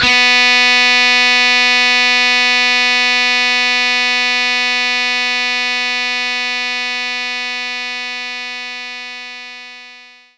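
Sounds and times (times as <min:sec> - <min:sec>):
distorted electric guitar playing B3: 0:00.0 - 0:10.2.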